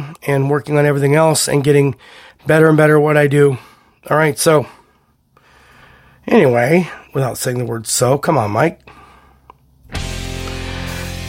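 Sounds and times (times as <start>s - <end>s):
speech: 0.2s - 4.8s, 6.3s - 9.0s
loud full podcast bumper music: 9.9s - 11.2s.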